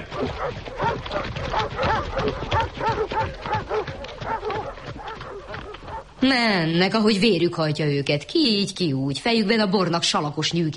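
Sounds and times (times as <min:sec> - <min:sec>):
pack of hunting dogs barking and yelping excitedly: 0:00.0 - 0:06.2
speech: 0:00.2 - 0:00.8, 0:06.2 - 0:10.7.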